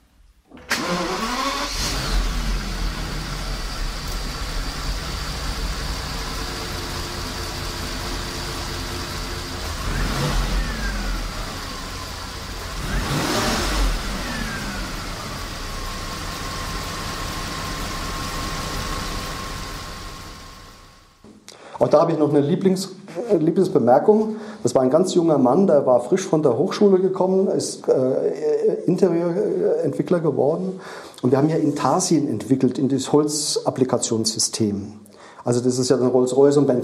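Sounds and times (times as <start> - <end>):
VW Phaeton W12 engine starting and idling in a garage: 0.5 - 21.2
speech: 21.9 - 36.8.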